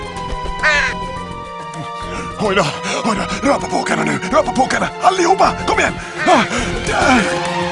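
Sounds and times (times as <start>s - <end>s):
crow cawing: 0.6s - 1.1s
speech: 2.5s - 7.7s.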